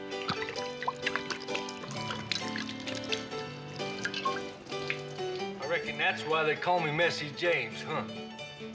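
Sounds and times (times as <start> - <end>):
whiskey pouring into a glass: 0.1 - 5.7
speech: 5.8 - 8.2.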